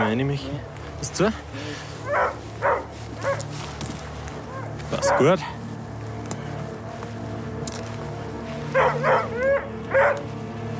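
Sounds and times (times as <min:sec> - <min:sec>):
speech: 0:00.1 - 0:02.4, 0:05.0 - 0:05.6
stressed dog barking and yipping: 0:02.1 - 0:03.5, 0:04.5 - 0:05.4, 0:08.7 - 0:10.2.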